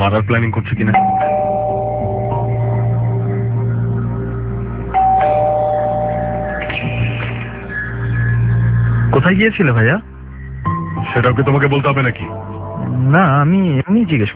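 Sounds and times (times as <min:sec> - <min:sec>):
speech: 0:00.0 - 0:01.3, 0:09.2 - 0:10.1, 0:11.1 - 0:14.3
doorbell at a home's front door chiming: 0:01.0 - 0:03.0, 0:05.0 - 0:07.2
steady low hum: 0:01.1 - 0:09.1.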